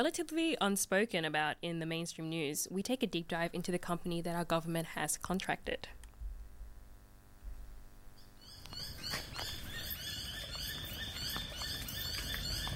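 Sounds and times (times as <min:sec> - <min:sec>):
speech: 0:00.0 - 0:06.0
chorus of chirping birdsong at sunrise at a home in Ashfield: 0:08.4 - 0:12.7.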